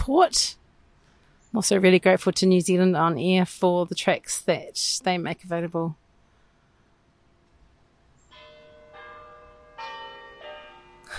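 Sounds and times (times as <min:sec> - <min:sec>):
speech: 0:00.0 - 0:00.6, 0:01.5 - 0:06.0
hall clock chiming: 0:08.4 - 0:11.1.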